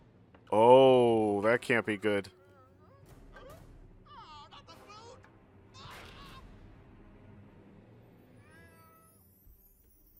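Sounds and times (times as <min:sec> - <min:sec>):
speech: 0:01.5 - 0:02.4
cat meowing inside a dojo: 0:08.4 - 0:09.3.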